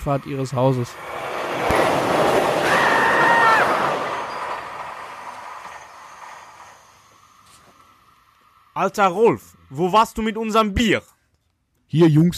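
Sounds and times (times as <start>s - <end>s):
speech: 0.0s - 1.2s, 8.8s - 11.1s, 11.9s - 12.3s
train on railway tracks next to a garden: 0.0s - 10.6s
train wheel metallic squeal: 2.6s - 7.8s.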